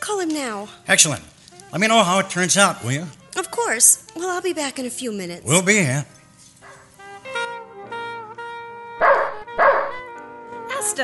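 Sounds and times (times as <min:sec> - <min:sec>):
speech: 0:00.1 - 0:06.2
dog barking sharply: 0:06.6 - 0:06.9, 0:09.0 - 0:10.0.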